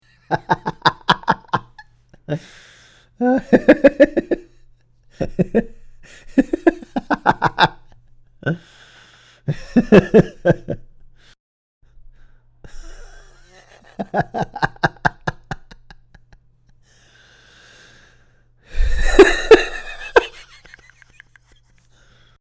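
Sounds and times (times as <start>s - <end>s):
man laughing: 0.3s - 2.5s, 3.2s - 4.5s, 5.2s - 8.6s, 9.5s - 10.9s, 12.7s - 16.4s, 18.8s - 21.8s.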